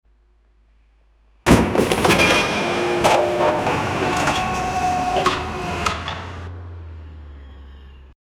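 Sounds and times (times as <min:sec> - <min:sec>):
truck crash: 0:01.5 - 0:08.0.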